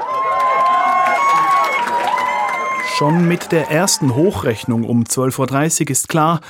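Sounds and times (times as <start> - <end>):
clapping: 0.0 - 4.3
packed room of people cheering and shouting exuberantly at celebration: 0.0 - 5.2
speech: 3.0 - 6.4.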